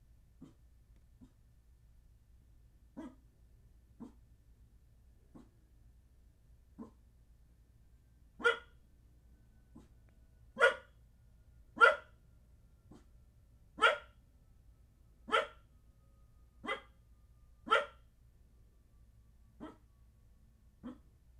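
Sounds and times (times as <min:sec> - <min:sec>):
low steady hum: 0:00.0 - 0:21.3
small dog barking indoors in an apartment: 0:00.4 - 0:00.6, 0:03.0 - 0:03.3, 0:04.0 - 0:04.2, 0:05.3 - 0:05.6, 0:06.8 - 0:07.0, 0:08.4 - 0:08.8, 0:09.7 - 0:09.9, 0:10.6 - 0:11.0, 0:11.8 - 0:12.1, 0:12.9 - 0:13.1, 0:13.8 - 0:14.2, 0:15.3 - 0:15.6, 0:16.6 - 0:16.9, 0:17.7 - 0:18.0, 0:19.6 - 0:19.8, 0:20.8 - 0:21.1.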